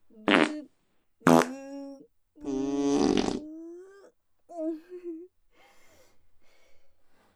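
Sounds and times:
string of loud farts: 0.3 - 0.6, 1.2 - 1.5, 2.5 - 3.4.

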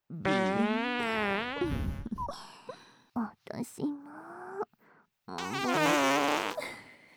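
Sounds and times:
rippling sputtering and airy hissing farts: 0.1 - 2.2, 5.3 - 6.6
speech: 3.6 - 4.0.

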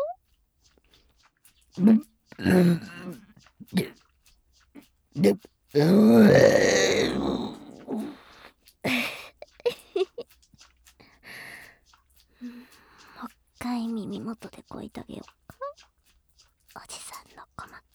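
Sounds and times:
wet mouth sounds: 0.8 - 17.9
drawn-out throaty burp: 1.8 - 3.9, 5.2 - 8.2
speech: 1.8 - 3.9, 5.2 - 6.6
short guttural vocal bursts: 1.8 - 4.0, 5.2 - 9.3.

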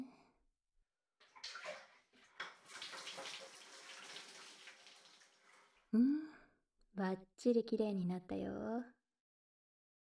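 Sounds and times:
hot water pouring to rinse off foam: 1.2 - 5.8
speech: 5.9 - 6.2, 7.0 - 9.0.

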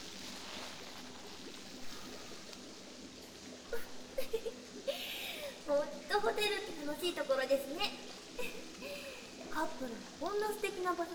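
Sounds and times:
churning water from hotel jet bath jets stirring bubble bath foam: 0.0 - 11.1
speech: 6.4 - 8.8, 9.6 - 11.1.

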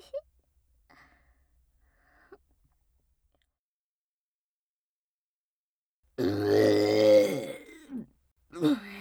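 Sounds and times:
long low croaking burp: 6.2 - 8.0
short voiced burps or grunts: 6.2 - 8.8.

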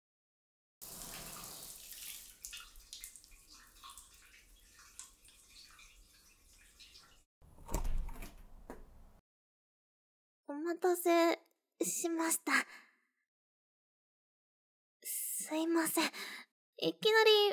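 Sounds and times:
shower water running: 0.8 - 7.2
speech: 10.8 - 12.8, 15.5 - 17.5.

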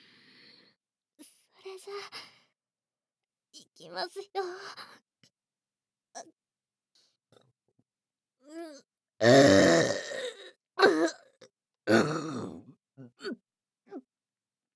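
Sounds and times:
quiet breaths: 0.0 - 0.8, 2.1 - 2.6
speech: 1.7 - 2.4, 3.8 - 5.1, 6.2 - 6.4, 8.5 - 10.0, 11.9 - 12.4
loud drawn-out forced burp: 9.2 - 11.2, 11.9 - 12.7.

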